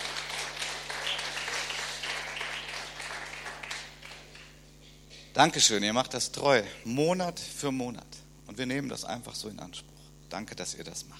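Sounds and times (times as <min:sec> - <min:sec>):
room full of people applauding: 0:00.0 - 0:04.6
low steady hum: 0:00.0 - 0:11.1
speech: 0:05.4 - 0:11.1.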